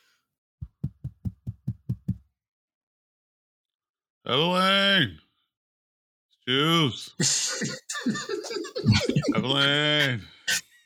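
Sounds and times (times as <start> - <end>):
knocking on a door: 0.6 - 2.3
speech: 4.3 - 5.2, 6.5 - 10.7
laughter: 7.2 - 10.8.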